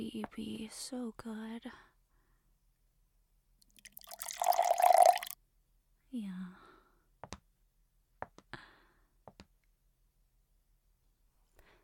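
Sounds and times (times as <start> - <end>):
speech: 0.0 - 1.9, 6.1 - 6.6
water pouring into a glass: 3.8 - 5.4.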